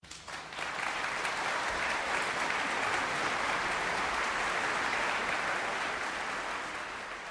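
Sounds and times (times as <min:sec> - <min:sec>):
applause: 0:00.0 - 0:07.2.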